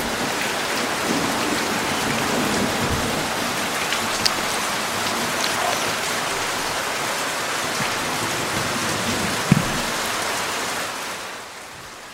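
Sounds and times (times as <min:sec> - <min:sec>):
dense rain falling in a forest: 0:00.0 - 0:12.1
louder drips or knocks: 0:02.8 - 0:08.2.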